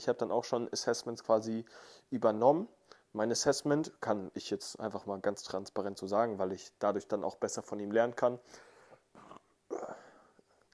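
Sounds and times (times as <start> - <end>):
speech: 0.0 - 8.7
single short burp: 9.1 - 10.4.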